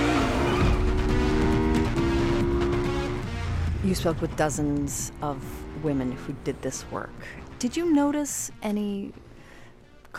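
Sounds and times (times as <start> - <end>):
high whining motorcycle tire squeal on a highway: 0.0 - 2.3
motorcycle engines roaring in a highway motorcycle chase: 0.0 - 10.1
speech: 3.9 - 9.2.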